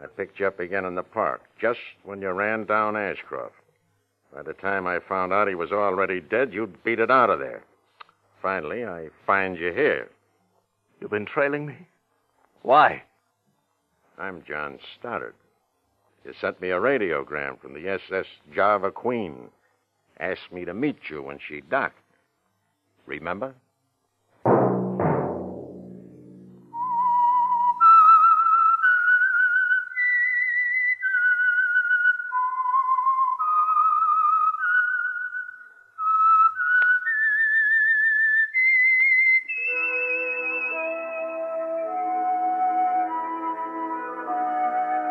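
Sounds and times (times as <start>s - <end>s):
speech: 0.0s - 3.6s, 4.3s - 7.7s, 8.4s - 10.2s, 11.0s - 11.9s, 12.6s - 13.1s, 14.2s - 15.4s, 16.2s - 19.6s, 20.2s - 22.0s, 23.1s - 23.6s
sustained orchestral chords: 24.5s - 27.2s
musical hit: 24.5s - 27.5s
lone whistled radio program theme melody: 26.5s - 45.0s.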